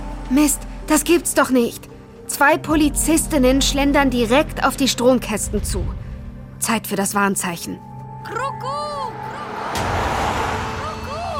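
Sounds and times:
speech: 0:00.3 - 0:06.0, 0:06.6 - 0:08.9
street traffic: 0:08.8 - 0:11.3
car rushing past: 0:09.1 - 0:11.3.

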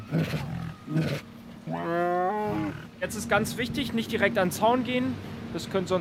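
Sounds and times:
tigers roaring at a zoo near feeding time: 0:00.0 - 0:03.1
speech: 0:00.1 - 0:01.1, 0:03.1 - 0:05.9.

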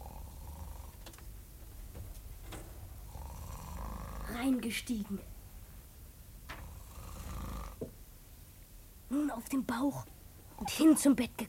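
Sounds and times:
man snoring in deep sleep: 0:00.0 - 0:01.0, 0:03.0 - 0:04.4, 0:06.6 - 0:07.9
speech: 0:04.4 - 0:05.3, 0:09.3 - 0:11.4.

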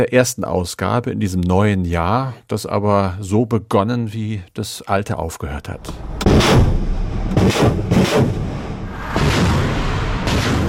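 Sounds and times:
speech: 0:00.0 - 0:06.7, 0:07.4 - 0:08.5
continuous rumbling din: 0:05.8 - 0:10.6
Russian artillery fire booms in eastern Ukraine: 0:06.0 - 0:10.6
Russian rocket launcher fire in eastern Ukraine: 0:06.0 - 0:10.6.

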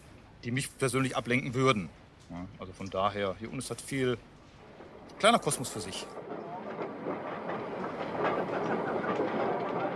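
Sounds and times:
speech: 0:00.4 - 0:04.3, 0:05.2 - 0:06.4
armoured face conveyor starting up in an underground coal mine: 0:04.2 - 0:09.9.

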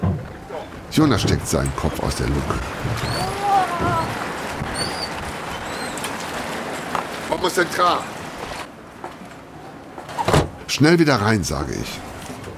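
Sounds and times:
heavy rain: 0:00.0 - 0:10.0
gusting wind: 0:00.0 - 0:12.5
speech: 0:00.9 - 0:04.3, 0:07.4 - 0:08.1, 0:10.7 - 0:12.1
brief voice-like sounds: 0:01.8 - 0:04.2
faint squeaky tones: 0:03.0 - 0:06.2.

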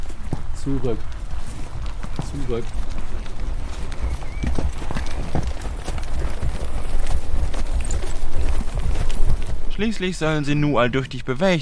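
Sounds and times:
horse hooves clip-clopping at a walking pace as it is led around: 0:00.0 - 0:11.6
rough outdoor noise: 0:00.0 - 0:11.6
speech: 0:00.6 - 0:01.2, 0:02.2 - 0:03.0, 0:09.8 - 0:11.6.

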